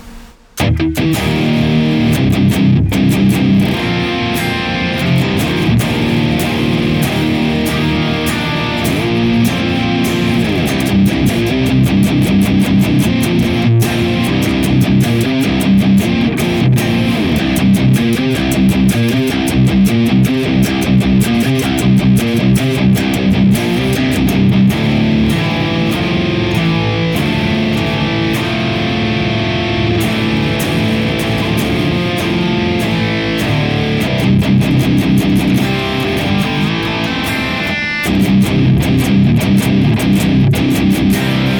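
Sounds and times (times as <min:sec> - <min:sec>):
heavily distorted electric guitar through Klon Kraken and Big Muff Pi pedals: 0:00.0 - 0:41.5.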